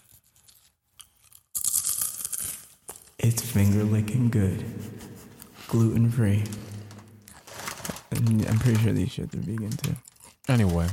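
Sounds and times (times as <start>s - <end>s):
crunching and chewing on cinnamon apple corn snack sticks: 0.0s - 3.2s, 7.2s - 10.9s
speech: 3.2s - 4.8s, 5.7s - 6.7s, 8.2s - 10.9s.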